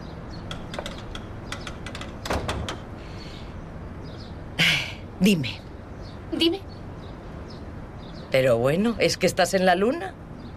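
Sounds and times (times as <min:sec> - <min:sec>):
door latch clicks and rattles: 0:00.4 - 0:02.9
speech: 0:05.2 - 0:05.7, 0:06.4 - 0:06.7, 0:08.3 - 0:10.2.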